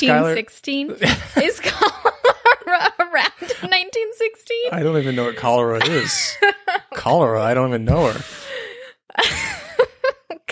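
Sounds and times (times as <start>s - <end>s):
speech: 0.0s - 8.4s, 9.1s - 9.6s
laughter: 1.0s - 3.8s, 4.7s - 10.5s
person gasping: 4.8s - 5.6s, 8.0s - 9.0s.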